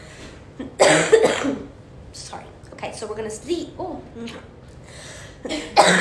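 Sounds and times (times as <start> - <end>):
person coughing: 0.6 - 1.7, 5.4 - 5.9
speech: 3.1 - 4.6, 5.4 - 5.9.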